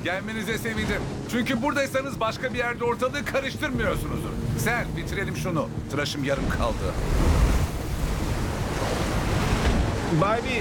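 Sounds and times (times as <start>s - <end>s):
speech: 0.0s - 7.6s, 10.1s - 10.5s
waves on a rough sea heard aboard a boat: 0.0s - 10.5s
wind: 0.0s - 10.5s.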